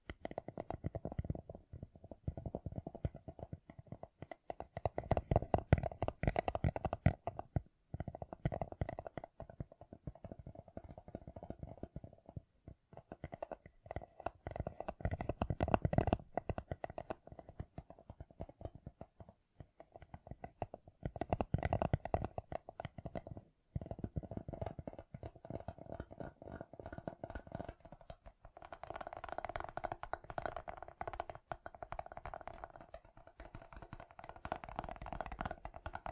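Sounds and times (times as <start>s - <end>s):
gem covered fingertips tapping: 0.0s - 36.1s.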